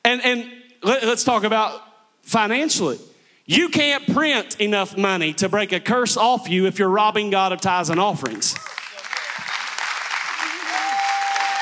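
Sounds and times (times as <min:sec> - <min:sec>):
speech: 0:00.1 - 0:08.8
audience clapping during a sermon: 0:08.2 - 0:11.5.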